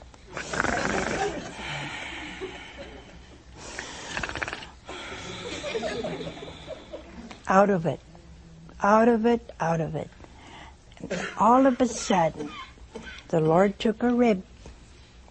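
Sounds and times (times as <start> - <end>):
man imitating a man snoring loudly: 0.4 - 1.6, 3.8 - 5.6
laughter: 0.9 - 3.4, 5.0 - 7.4
speech: 7.5 - 8.1, 8.8 - 10.2, 11.0 - 12.6, 13.3 - 14.5.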